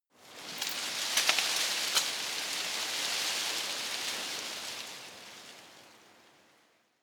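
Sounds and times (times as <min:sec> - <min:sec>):
tree foliage rustling softly in a garden: 0:00.2 - 0:05.9.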